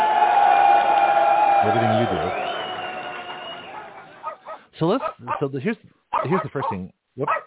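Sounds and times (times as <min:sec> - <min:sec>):
cheering voices: 0:00.0 - 0:04.3
crowd applause: 0:00.0 - 0:04.4
speech: 0:01.6 - 0:02.5, 0:04.8 - 0:07.4.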